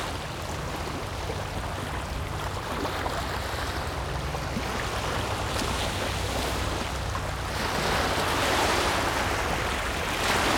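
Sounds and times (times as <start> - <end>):
low even engine-like drone: 0.0 - 10.5
waves washing onto a beach: 5.3 - 10.5.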